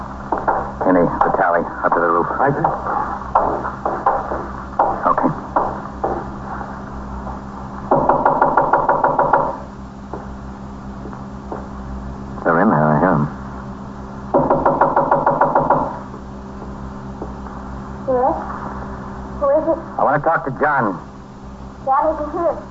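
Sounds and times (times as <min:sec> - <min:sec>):
steady low hum: 0:00.0 - 0:22.6
police officer knocking loudly on a front door: 0:00.3 - 0:01.4, 0:02.6 - 0:06.3, 0:07.9 - 0:10.3, 0:14.4 - 0:16.0
speech: 0:01.6 - 0:04.6, 0:20.5 - 0:21.1.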